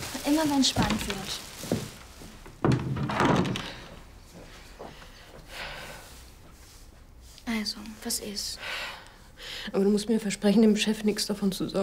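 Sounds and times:
faint shuffle: 0:00.0 - 0:02.7, 0:03.7 - 0:08.6
speech: 0:00.2 - 0:01.8, 0:07.6 - 0:08.9, 0:09.6 - 0:11.8
door pushed shut: 0:02.6 - 0:04.0.

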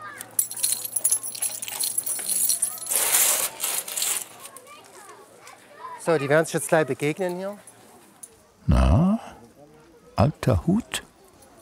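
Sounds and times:
keys jingling: 0:00.2 - 0:04.2
speech: 0:06.0 - 0:07.7, 0:10.2 - 0:11.0.

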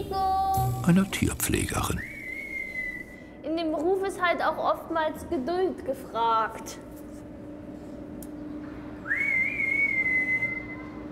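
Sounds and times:
speech: 0:00.1 - 0:02.1, 0:04.3 - 0:06.9
female zookeeper whistling one long note to call a zoo animal: 0:02.0 - 0:03.3, 0:09.1 - 0:11.0.

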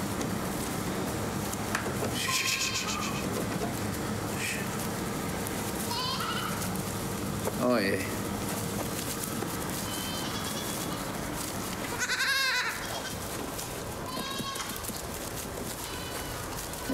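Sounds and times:
constant rustling: 0:00.0 - 0:16.9
young goats bleating: 0:02.1 - 0:03.5, 0:05.7 - 0:06.9, 0:09.4 - 0:16.9
speech: 0:07.7 - 0:08.2.

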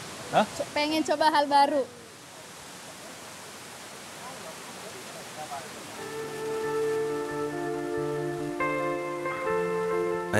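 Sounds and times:
waterfall rushing: 0:00.0 - 0:10.3
speech: 0:00.3 - 0:02.0
sustained musical tones: 0:06.0 - 0:10.3.

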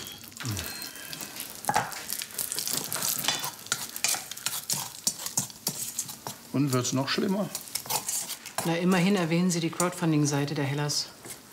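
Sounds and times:
bacon frying and overcooking in a pan: 0:00.0 - 0:10.5
speech: 0:06.6 - 0:07.6, 0:08.6 - 0:11.2.

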